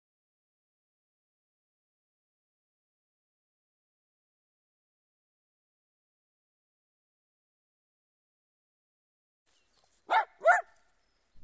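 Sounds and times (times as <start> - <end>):
dog barking: 10.1 - 10.8.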